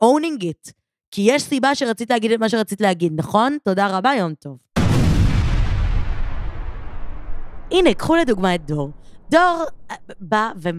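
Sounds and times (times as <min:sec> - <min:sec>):
speech: 0:00.0 - 0:04.7, 0:07.7 - 0:10.7
big explosion with deep rumbling boom: 0:04.8 - 0:10.7.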